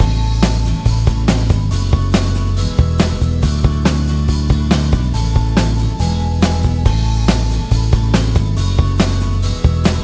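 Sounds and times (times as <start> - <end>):
chorus loop: 0.0 - 10.0.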